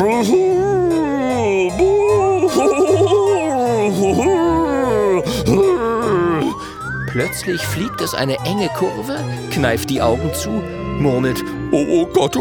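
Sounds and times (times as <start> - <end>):
speech: 0.0 - 0.7, 7.2 - 12.3
human voice imitating a vampire creature's howl with a wavering wail and moan: 1.1 - 6.8, 11.0 - 12.3
laughter: 1.6 - 10.5.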